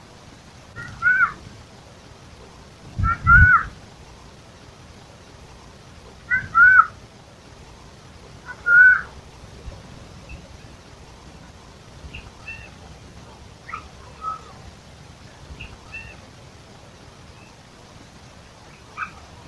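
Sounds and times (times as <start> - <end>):
Eurasian jay Garrulus glandarius nasal calls: 0.8 - 1.4, 3.0 - 3.8, 6.2 - 7.0, 8.4 - 9.3, 12.1 - 14.8, 15.6 - 16.3, 18.6 - 19.4.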